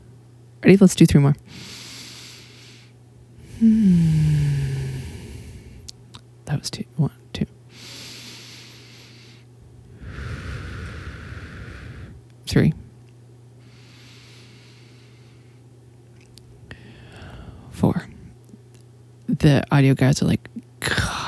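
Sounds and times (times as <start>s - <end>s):
low steady hum: 0.0s - 21.2s
speech: 0.6s - 1.8s, 3.6s - 4.3s, 6.6s - 7.5s, 12.5s - 12.8s, 19.4s - 20.6s
slow deep breaths in and out: 1.5s - 5.9s, 7.7s - 12.2s, 13.6s - 15.7s, 16.6s - 17.7s.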